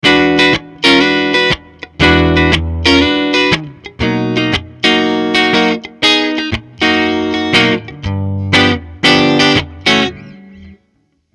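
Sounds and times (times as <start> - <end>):
electric guitar on neck pickup: 0.0 - 11.3.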